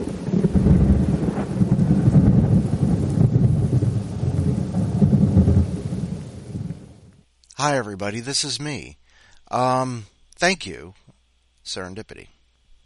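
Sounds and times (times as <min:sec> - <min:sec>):
deep rolling thunder: 0:00.0 - 0:07.2
steady rain in a heavy thunderstorm: 0:00.0 - 0:07.2
speech: 0:07.6 - 0:11.0, 0:11.6 - 0:12.4.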